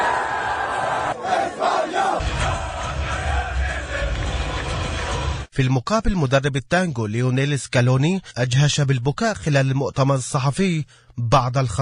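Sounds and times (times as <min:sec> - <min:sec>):
large stadium crowd roaring and cheering in celebration: 0:00.0 - 0:05.5
speech: 0:05.6 - 0:11.8.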